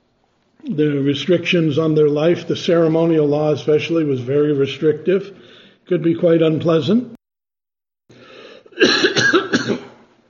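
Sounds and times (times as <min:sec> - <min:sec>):
speech: 0:00.6 - 0:07.2
raspy intake of breath: 0:05.4 - 0:05.9, 0:08.1 - 0:08.8
harsh coughs from a person: 0:08.7 - 0:10.1.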